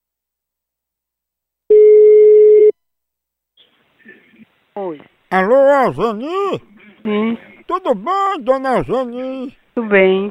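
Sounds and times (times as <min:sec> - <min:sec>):
telephone ringback tone: 0:01.7 - 0:02.7
speech: 0:04.8 - 0:10.2.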